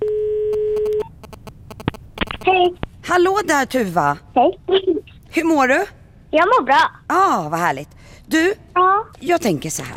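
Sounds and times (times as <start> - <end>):
telephone ringing tone of an outgoing call: 0.0 - 1.1
speech: 2.6 - 9.9.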